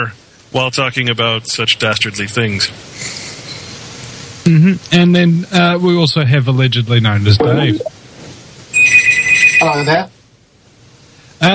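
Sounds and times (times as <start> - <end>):
speech: 0.0 - 3.2, 4.5 - 7.9, 9.6 - 10.2, 11.4 - 11.5
telephone ringing in a steady electronic trill: 8.8 - 10.0.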